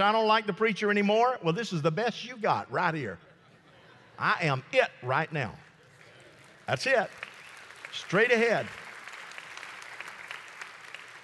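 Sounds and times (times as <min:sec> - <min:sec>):
speech: 0:00.0 - 0:03.3, 0:04.2 - 0:05.7, 0:06.7 - 0:07.2, 0:07.9 - 0:08.8
thin scattered applause from a small audience: 0:05.9 - 0:11.2.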